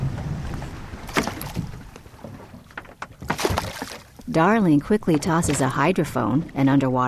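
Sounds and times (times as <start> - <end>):
rushing wind: 0.0 - 2.5
20-foot research boat low rumble off Maui: 0.0 - 7.0
water splashes against research boat hull: 0.0 - 7.0
speech: 4.4 - 7.0.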